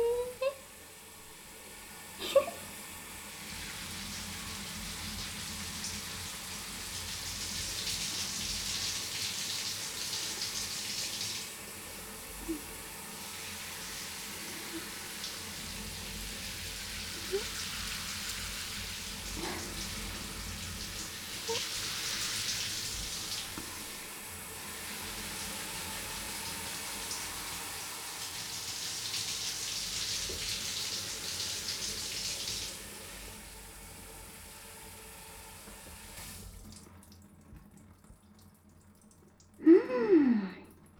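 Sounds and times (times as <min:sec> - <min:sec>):
steady running water from a shower: 0:00.0 - 0:40.9
something fluffy being scrubbed and washed: 0:02.2 - 0:32.6.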